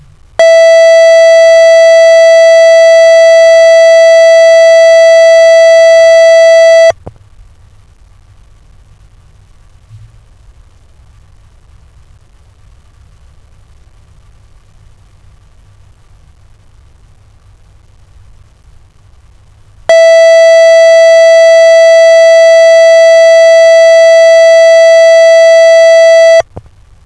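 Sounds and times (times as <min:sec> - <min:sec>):
tone: 0:00.4 - 0:06.9, 0:19.9 - 0:26.4.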